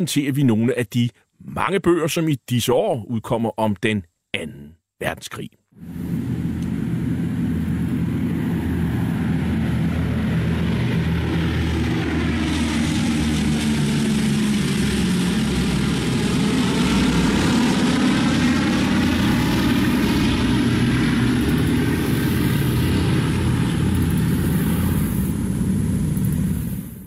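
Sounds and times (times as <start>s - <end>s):
speech: 0.0s - 6.4s
Boeing B-17F Flying Fortress bomber propeller engines droning: 5.8s - 27.0s.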